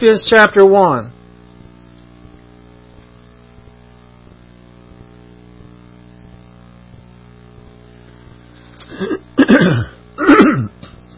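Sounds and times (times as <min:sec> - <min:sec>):
speech: 0:00.0 - 0:01.2, 0:09.0 - 0:10.7
man clearing his throat: 0:08.8 - 0:11.0.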